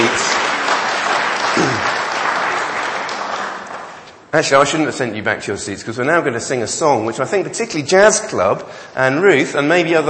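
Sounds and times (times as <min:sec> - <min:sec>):
audience applause: 0:00.0 - 0:04.1
speech: 0:04.4 - 0:10.0.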